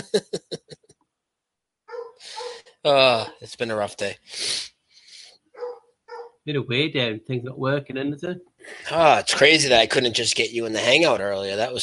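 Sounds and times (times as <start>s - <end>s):
laughter: 0.0s - 0.8s
speech: 0.1s - 0.4s, 2.8s - 4.6s, 6.4s - 11.8s
dog barking: 1.9s - 2.6s, 5.6s - 6.4s.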